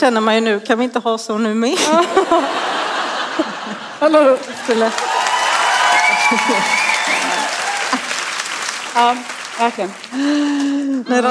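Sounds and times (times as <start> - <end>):
speech: 0.0 - 2.8, 3.4 - 5.2, 6.3 - 6.8, 9.0 - 11.2
laughter: 1.8 - 11.2
crowd clapping: 4.2 - 11.2.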